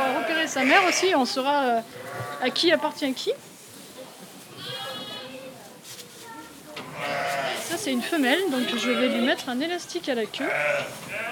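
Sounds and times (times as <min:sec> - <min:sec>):
lamb bleating: 0:00.0 - 0:01.2, 0:01.9 - 0:02.8, 0:04.5 - 0:05.4, 0:06.8 - 0:07.7, 0:08.5 - 0:09.4, 0:10.4 - 0:11.3
speech: 0:00.5 - 0:03.5, 0:07.7 - 0:11.3.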